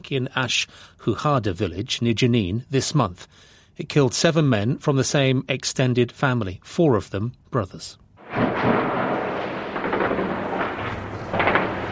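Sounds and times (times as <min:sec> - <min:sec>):
speech: 0:00.0 - 0:08.9
gunfire bursts: 0:08.2 - 0:11.9
steady heavy rumble: 0:08.2 - 0:11.9.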